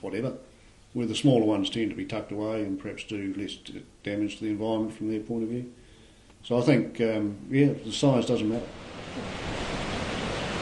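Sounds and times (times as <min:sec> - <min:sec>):
speech: 0:00.0 - 0:05.8, 0:06.4 - 0:09.7
rushing river water at a hydro intake: 0:08.4 - 0:10.6.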